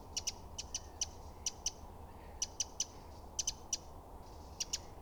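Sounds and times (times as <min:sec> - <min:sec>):
Eurasian wren Troglodytes troglodytes hard tick calls: 0:00.1 - 0:01.8, 0:02.4 - 0:03.8, 0:04.6 - 0:04.8.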